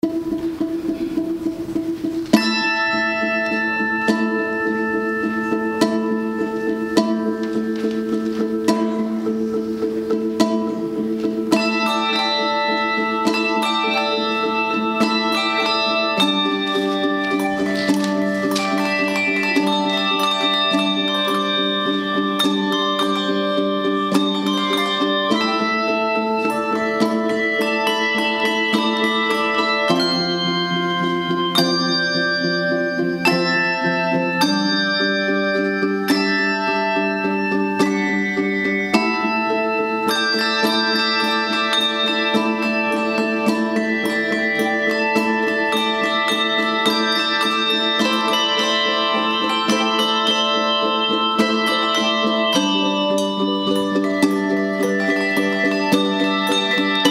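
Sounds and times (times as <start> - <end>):
bell choir playing: 0.0 - 57.0.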